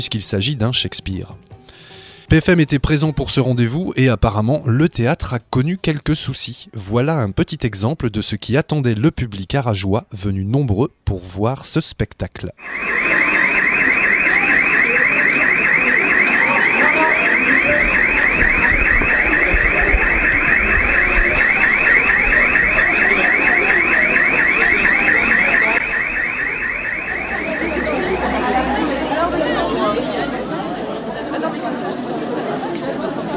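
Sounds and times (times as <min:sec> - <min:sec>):
speech: 0:00.0 - 0:01.5, 0:02.3 - 0:13.4
rapidly pulsing electronic alarm in a theatre: 0:12.6 - 0:30.1
crowd chatting: 0:12.6 - 0:33.3.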